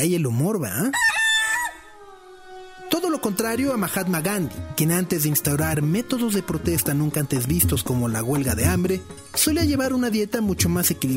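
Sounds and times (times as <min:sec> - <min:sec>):
speech: 0:00.0 - 0:01.2, 0:03.0 - 0:11.1
rooster crowing: 0:00.9 - 0:03.3.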